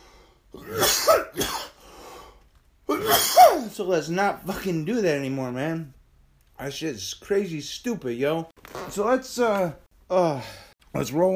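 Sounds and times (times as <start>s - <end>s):
person coughing: 0.6s - 1.8s, 2.9s - 3.8s
speech: 3.0s - 6.0s, 6.6s - 11.3s.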